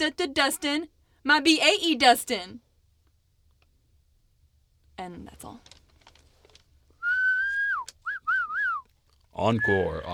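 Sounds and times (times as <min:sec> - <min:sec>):
speech: 0:00.0 - 0:02.6, 0:05.0 - 0:05.8, 0:09.4 - 0:10.1
person whistling a short tune: 0:07.0 - 0:08.8.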